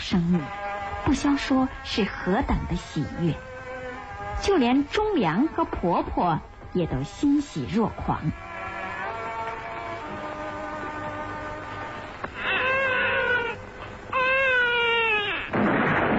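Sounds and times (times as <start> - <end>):
sustained humming tone: 0.0 - 14.2
speech: 0.1 - 3.5, 4.4 - 8.4
newborn baby crying: 12.4 - 15.5.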